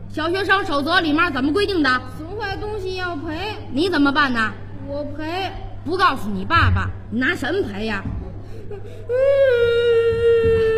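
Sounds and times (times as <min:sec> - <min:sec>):
speech: 0:00.1 - 0:10.7
child crying: 0:08.6 - 0:10.7.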